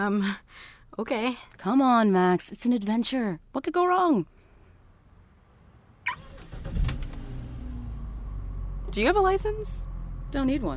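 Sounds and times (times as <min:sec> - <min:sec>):
speech: 0:00.0 - 0:04.4, 0:08.9 - 0:10.7
self-driving car engine cranking and starting: 0:05.1 - 0:10.7
self-driving car engine idling with a low rumble: 0:06.0 - 0:10.7.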